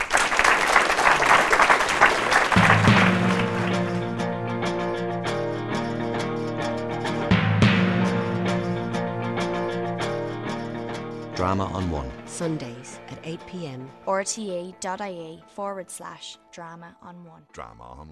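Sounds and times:
theatre audience clapping: 0:00.0 - 0:04.2
sustained music: 0:02.3 - 0:15.6
speech: 0:11.5 - 0:18.1.

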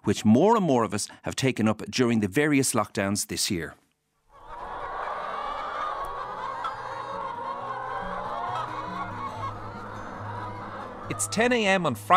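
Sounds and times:
speech: 0:00.1 - 0:03.8, 0:11.1 - 0:12.1
large flock of free-range hens clucking: 0:04.3 - 0:12.1.

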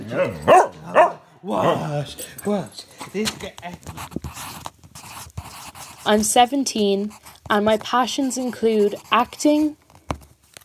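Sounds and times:
speech: 0:00.1 - 0:00.7, 0:01.4 - 0:04.6, 0:06.0 - 0:09.8
dog barking: 0:00.1 - 0:01.9.

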